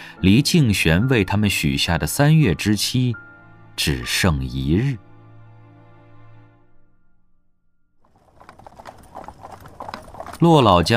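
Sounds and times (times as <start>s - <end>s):
speech: 0.2s - 5.1s, 10.4s - 10.9s
horse-drawn carriage hooves clip-clopping: 8.1s - 10.9s.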